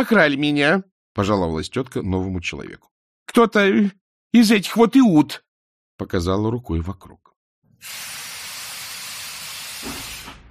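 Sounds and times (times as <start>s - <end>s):
speech: 0.0s - 5.4s, 6.0s - 7.2s, 7.8s - 8.2s, 9.8s - 10.1s
steam locomotive blasting hissing steam: 7.8s - 10.4s.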